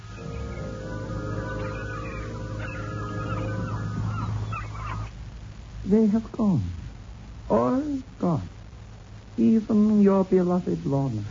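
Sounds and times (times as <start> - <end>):
several seagulls screeching and crying: 0.0 - 5.1
steady low drone: 0.0 - 5.9
speech: 5.9 - 6.8, 7.5 - 8.6, 9.4 - 11.2.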